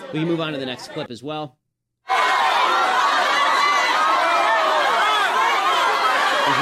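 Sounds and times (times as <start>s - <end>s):
speech: 0.1s - 1.6s
massive crowd yelling and screaming at a man: 2.1s - 6.5s.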